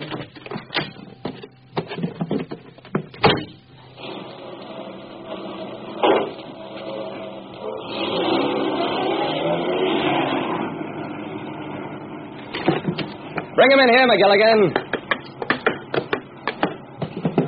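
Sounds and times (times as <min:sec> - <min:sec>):
clunks: 0:00.0 - 0:04.2, 0:05.3 - 0:07.8, 0:12.4 - 0:13.6, 0:14.7 - 0:17.4
car engine starting and revving: 0:04.0 - 0:12.6
speech: 0:13.7 - 0:14.8.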